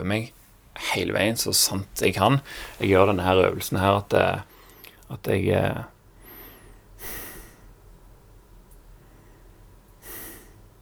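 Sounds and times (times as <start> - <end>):
speech: 0.0 - 4.5, 5.1 - 5.9
steady low hum: 0.0 - 10.8
person breathing softly during a breathing exercise: 0.2 - 10.8.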